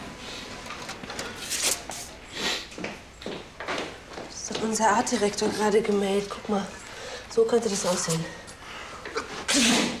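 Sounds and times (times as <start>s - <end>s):
speech: 4.6s - 6.8s, 7.4s - 8.4s, 9.6s - 9.9s
person sneezing: 9.3s - 9.9s.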